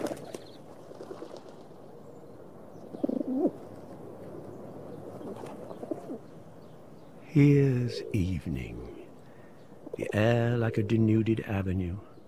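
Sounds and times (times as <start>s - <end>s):
pigeons cooing on a pavement: 2.9s - 3.7s, 5.1s - 6.3s, 7.2s - 11.3s
speech: 7.4s - 8.9s, 10.0s - 12.1s.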